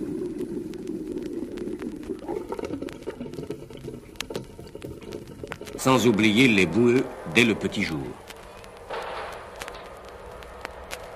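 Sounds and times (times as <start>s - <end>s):
water gurgling and bubbling through household plumbing pipes: 0.0s - 7.6s
irregular ticking clicks in plumbing pipes: 0.0s - 11.1s
speech: 5.8s - 8.2s.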